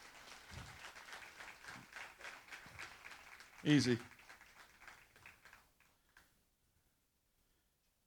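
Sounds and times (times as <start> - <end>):
audience applause: 0.0 - 5.9
speech: 3.6 - 4.2.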